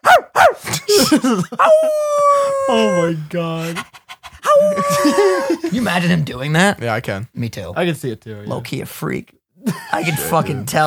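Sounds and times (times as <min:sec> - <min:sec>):
laughter: 0:00.6 - 0:02.0, 0:04.5 - 0:05.9, 0:09.6 - 0:10.8
speech: 0:01.0 - 0:04.0, 0:04.6 - 0:10.8
person imitating a barking dog: 0:01.6 - 0:03.2, 0:04.4 - 0:05.6.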